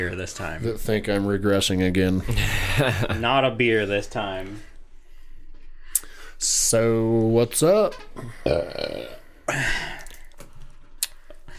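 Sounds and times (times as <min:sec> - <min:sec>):
speech: 0:00.0 - 0:04.7, 0:06.4 - 0:09.9
loud drawn-out belch after drinking an energy drink: 0:08.2 - 0:09.7.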